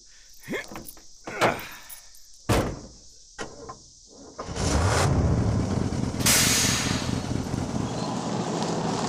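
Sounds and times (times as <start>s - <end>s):
sharp clunks and bangs: 2.4s - 3.8s
heavy truck engine rumbling: 4.4s - 9.0s
truck air-brake hiss: 6.2s - 7.3s.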